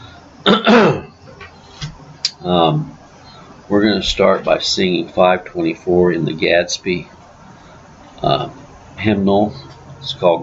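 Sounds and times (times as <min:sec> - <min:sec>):
speech: 0:00.4 - 0:01.0, 0:02.4 - 0:03.0, 0:03.7 - 0:07.2, 0:08.2 - 0:10.4
person clearing throat: 0:00.4 - 0:01.2
person coughing: 0:00.5 - 0:01.1.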